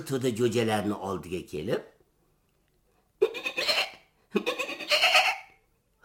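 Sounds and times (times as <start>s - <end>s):
speech: 0.0s - 1.9s
young goat bleating: 3.2s - 5.6s.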